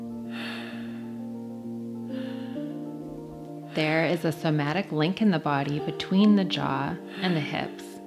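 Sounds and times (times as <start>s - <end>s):
steady sustained musical drone: 0.0s - 8.0s
slow airy breaths through an open mouth: 0.3s - 1.3s, 2.1s - 2.9s
speech: 3.8s - 7.9s.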